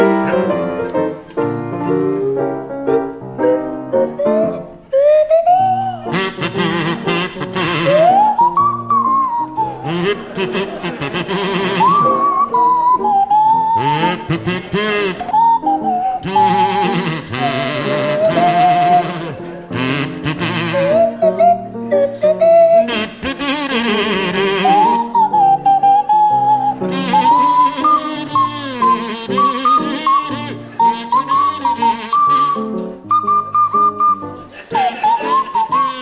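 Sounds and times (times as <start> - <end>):
piano accompaniment: 0.0 - 36.0
buzzy kazoo playing a jaunty tune: 5.0 - 21.6, 22.4 - 36.0
sliding swanee whistle playing a jaunty tune: 7.6 - 9.9, 11.6 - 14.2, 15.3 - 19.3, 20.7 - 23.0, 24.6 - 36.0
laughter: 9.6 - 12.8, 34.3 - 36.0.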